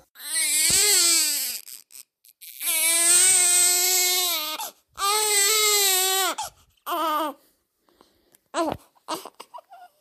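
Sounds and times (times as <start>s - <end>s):
newborn baby girl crying: 0.0s - 7.5s, 8.5s - 9.9s.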